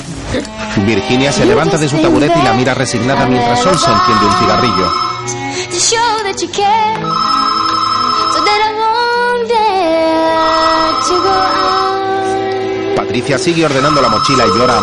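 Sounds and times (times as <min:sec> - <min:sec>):
speech: 0:00.3 - 0:07.8, 0:08.4 - 0:12.0, 0:13.0 - 0:14.8
telephone ringing with gliding electronic ring: 0:03.6 - 0:05.9, 0:07.0 - 0:09.0, 0:10.2 - 0:12.4, 0:13.7 - 0:14.8.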